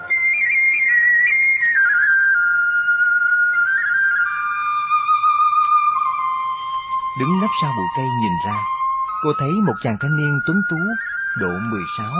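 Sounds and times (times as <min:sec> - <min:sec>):
bamboo flute playing a trilling melody on a mountain: 0:00.0 - 0:12.1
speech: 0:07.2 - 0:12.1.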